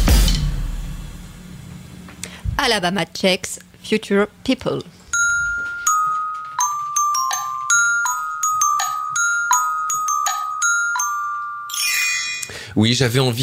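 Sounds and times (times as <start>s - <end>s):
speech: 2.6s - 5.0s, 12.8s - 13.4s
short bright bell chime jingle used as separator: 5.2s - 12.7s.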